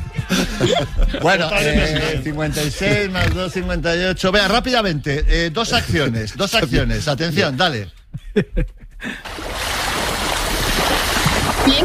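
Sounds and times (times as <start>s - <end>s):
laughter: 0.0s - 3.6s, 8.1s - 9.2s
speech: 0.3s - 9.6s
ocean surf waves rushing: 9.2s - 11.8s.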